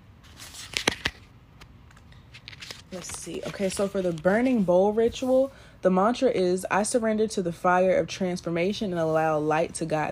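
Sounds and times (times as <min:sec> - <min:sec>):
oracle cards rustling: 0:00.2 - 0:05.3
oracle cards snapping: 0:00.4 - 0:03.7
speech: 0:02.9 - 0:10.1.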